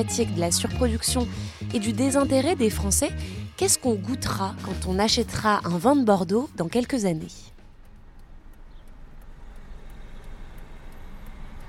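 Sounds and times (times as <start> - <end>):
speech: 0.0 - 7.5
road and engine rumble inside a moving car driving from Bordeaux to Villeneuve-d'Ornon: 7.6 - 11.6.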